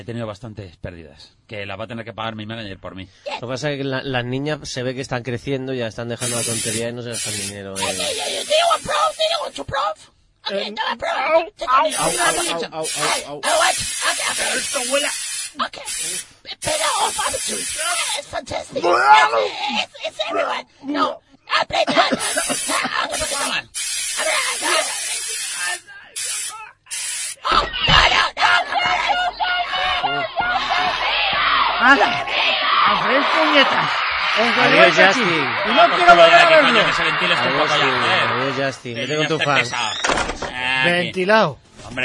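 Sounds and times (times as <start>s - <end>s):
speech: 0.0s - 25.0s, 27.4s - 31.2s, 31.8s - 42.0s
pepper spray hissing from an aerosol can: 6.2s - 9.6s, 11.9s - 18.3s, 22.1s - 27.5s
laughter: 21.5s - 23.6s, 28.4s - 40.0s.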